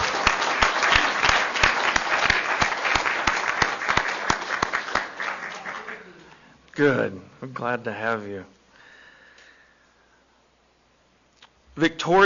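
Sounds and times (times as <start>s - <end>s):
crowd applauding: 0.0s - 6.3s
speech: 6.8s - 8.6s, 11.8s - 12.2s.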